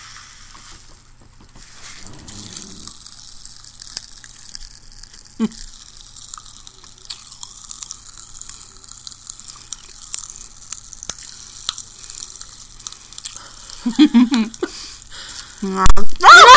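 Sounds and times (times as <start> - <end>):
Pop Rocks candy crackling: 0.2 - 16.5
handling bursts: 0.8 - 3.0
vocal sounds: 2.0 - 3.0.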